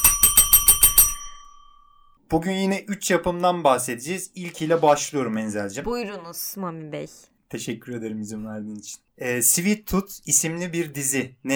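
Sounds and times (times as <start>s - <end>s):
bright bell ringing: 0.0s - 2.2s
speech: 2.3s - 11.5s.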